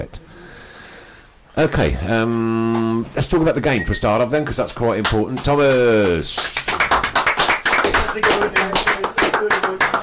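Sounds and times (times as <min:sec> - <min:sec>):
speech: 0:00.0 - 0:00.5, 0:01.6 - 0:06.8, 0:08.2 - 0:09.8
small group of hosts clapping in applause: 0:04.8 - 0:10.0.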